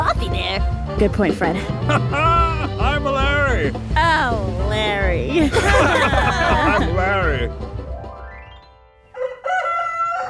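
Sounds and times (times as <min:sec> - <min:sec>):
speech: 0:01.0 - 0:02.4, 0:03.6 - 0:07.8
laughter: 0:01.6 - 0:03.7, 0:05.3 - 0:07.6
rooster crowing loudly: 0:09.1 - 0:10.2.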